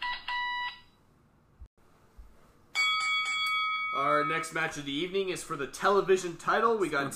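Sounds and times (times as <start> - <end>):
bell clanging: 2.8 - 4.8
speech: 4.2 - 7.1.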